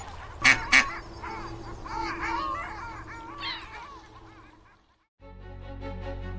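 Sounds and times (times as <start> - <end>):
ducks being fed bread quacking: 0.4 - 5.0
steady tonal hum: 0.4 - 5.0.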